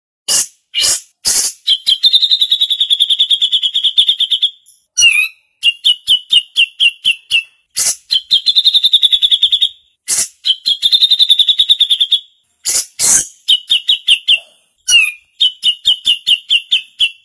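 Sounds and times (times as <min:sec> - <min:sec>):
female bulbul chattering: 0:00.3 - 0:17.2.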